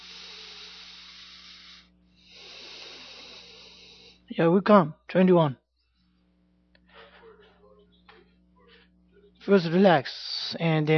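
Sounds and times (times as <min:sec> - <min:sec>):
slow deep exhalation during breathing exercise: 0:00.0 - 0:04.3
low electrical hum: 0:00.0 - 0:10.9
speech: 0:04.3 - 0:05.6, 0:09.5 - 0:10.9
laughter: 0:06.8 - 0:09.4.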